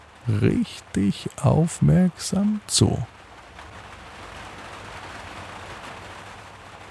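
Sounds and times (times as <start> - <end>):
steady rain pattering on a skylight window: 0.0 - 6.9
speech: 0.3 - 3.2.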